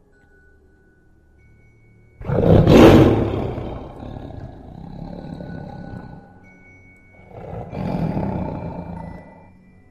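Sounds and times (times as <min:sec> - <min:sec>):
terrifying beast roaring: 0:02.2 - 0:06.3, 0:07.2 - 0:09.4.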